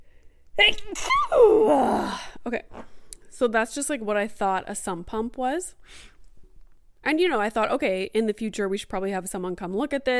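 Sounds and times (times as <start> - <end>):
loud sneeze: 0.6 - 2.2
speech: 0.6 - 6.1, 7.0 - 10.1.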